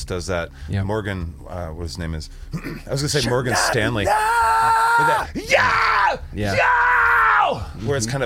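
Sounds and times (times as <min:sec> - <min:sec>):
speech: 0:00.0 - 0:06.8, 0:07.5 - 0:08.2
person scream-singing in a high-pitched vocal technique demonstration: 0:03.5 - 0:07.6.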